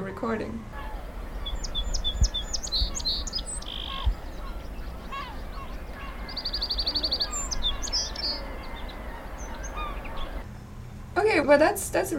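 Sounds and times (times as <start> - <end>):
speech: 0.2 - 0.9, 11.5 - 12.1
other birds calling: 0.7 - 10.6
song sparrow singing: 0.8 - 10.4.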